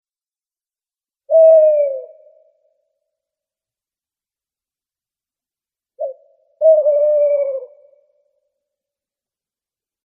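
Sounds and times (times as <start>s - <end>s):
owl hooting: 1.3s - 2.4s, 6.0s - 8.0s.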